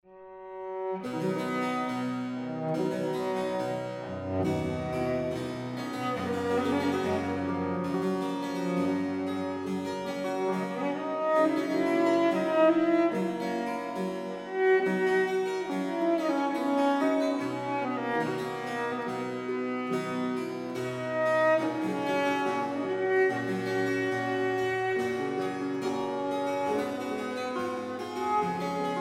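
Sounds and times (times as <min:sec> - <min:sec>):
solo cello sonata with bass accompaniment: 0:00.1 - 0:28.9.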